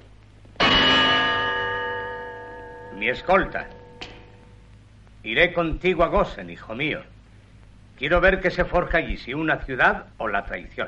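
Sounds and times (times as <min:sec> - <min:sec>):
gong struck with a staff: 0:00.6 - 0:04.7
speech: 0:03.0 - 0:03.8, 0:05.2 - 0:07.2, 0:08.0 - 0:10.8.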